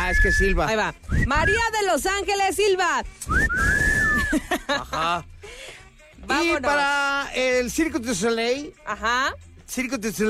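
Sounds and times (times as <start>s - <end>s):
person whistling at a lively gathering: 0.0s - 1.6s, 3.2s - 4.4s
speech: 0.1s - 10.2s
laughter: 4.1s - 5.2s.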